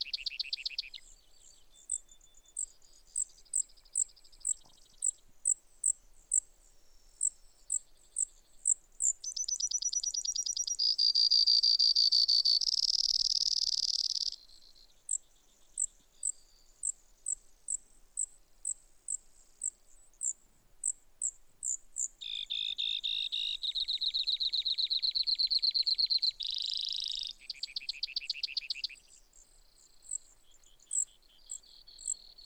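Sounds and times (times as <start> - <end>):
Brewer's sparrow song with high chips and buzzy trills: 0.0 - 32.4.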